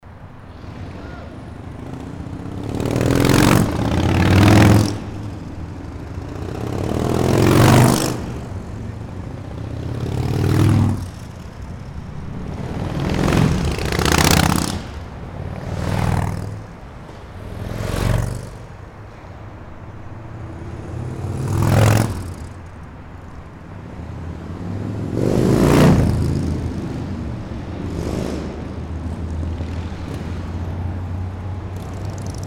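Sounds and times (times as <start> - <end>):
motorcycle moving: 0.0 - 32.4.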